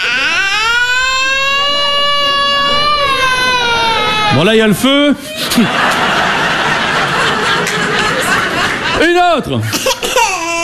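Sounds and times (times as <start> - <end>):
recorded baby wailing loudly: 0.0 - 4.8, 9.9 - 10.6
speech: 4.4 - 6.0, 9.0 - 10.0
laughter: 5.2 - 10.0.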